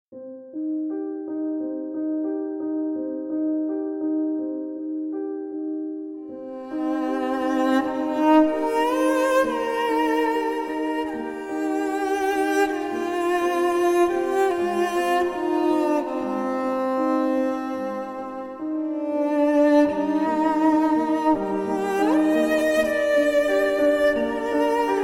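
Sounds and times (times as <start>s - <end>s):
piano: 0.1s - 25.0s
cello: 6.3s - 25.0s.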